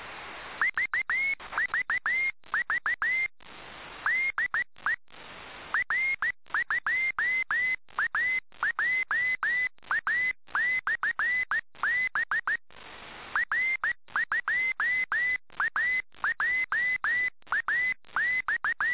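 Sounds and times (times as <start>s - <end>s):
CW beacon morse code tones: 0.6s - 3.3s, 5.8s - 12.6s, 13.4s - 18.9s.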